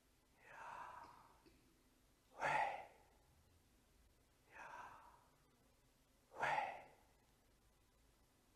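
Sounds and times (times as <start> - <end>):
slow deliberate breathing in and out: 0.3 - 3.3, 4.4 - 5.7, 6.3 - 7.2.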